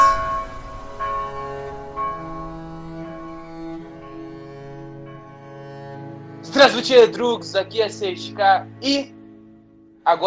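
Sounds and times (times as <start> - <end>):
bell ringing: 0.0 - 4.4
speech: 6.6 - 9.2, 10.1 - 10.2.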